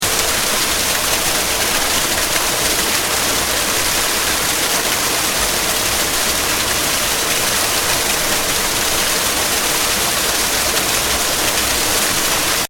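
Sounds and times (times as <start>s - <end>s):
fast splattery waterfall: 0.0s - 12.6s.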